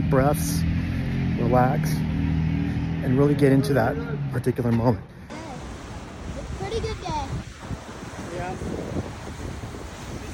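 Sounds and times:
speech: 0.1 - 0.7, 1.4 - 2.0, 3.0 - 5.4
broad rush of ocean surf: 5.3 - 10.3
gusting wind buffeting the microphone: 5.6 - 10.3.

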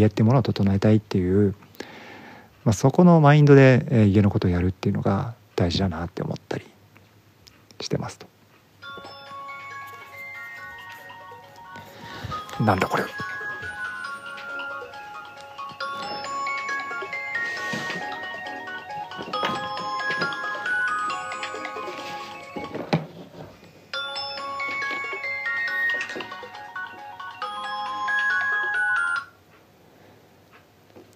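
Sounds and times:
speech: 0.0 - 1.7, 2.6 - 6.7, 7.8 - 8.3, 12.6 - 13.3
child's GPS tracker phone ringing with electronic melody: 8.8 - 23.0, 23.9 - 29.4.

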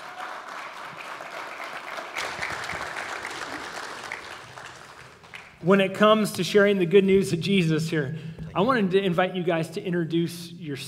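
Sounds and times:
crowd applauding: 0.0 - 5.6
speech: 5.6 - 10.8.

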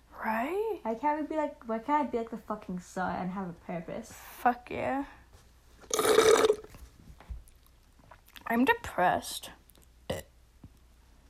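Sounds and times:
speech: 0.9 - 5.2, 8.5 - 10.2
loud drawn-out burp: 5.9 - 6.7, 10.1 - 10.3.

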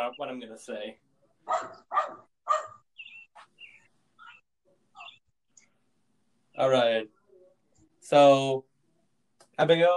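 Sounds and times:
speech: 0.0 - 2.6, 6.6 - 7.2, 8.1 - 8.7, 9.6 - 9.9
dog barking: 1.4 - 2.8
short high chirping calls: 2.5 - 4.4.

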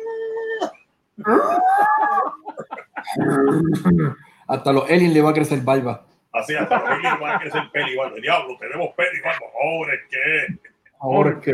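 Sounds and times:
person imitating a howling wolf: 0.0 - 4.2
laughter: 1.2 - 4.0, 6.5 - 9.6
speech: 1.2 - 11.5.

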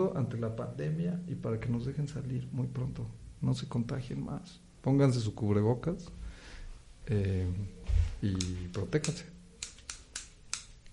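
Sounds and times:
speech: 0.0 - 6.3, 7.1 - 9.4
faint low hum: 0.0 - 10.9
scissors snipping in the air around a person: 8.4 - 10.9.

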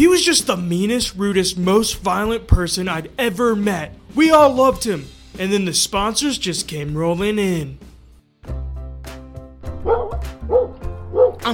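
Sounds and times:
speech: 0.0 - 8.6
several dogs barking: 9.7 - 11.5
higher dog yips and whining notes: 9.8 - 11.4.

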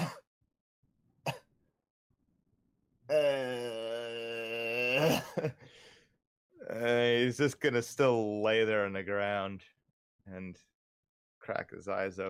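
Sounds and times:
person acting out a weak cough of an injured character: 0.0 - 0.2, 5.0 - 5.6
speech: 3.1 - 3.6, 7.3 - 10.7, 11.4 - 12.2
person groaning strained: 3.1 - 5.5.

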